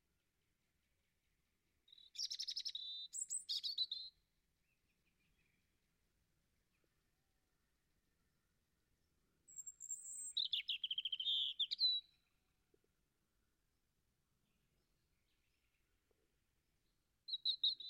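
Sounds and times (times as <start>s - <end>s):
European robin warbling song: 1.9s - 4.1s, 9.5s - 12.1s, 17.3s - 17.8s.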